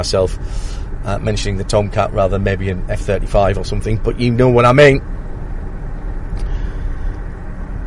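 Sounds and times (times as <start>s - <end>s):
speech: 0.0s - 5.2s
road rumble and tire roar inside a car driving at speed on tarmac: 0.0s - 7.8s.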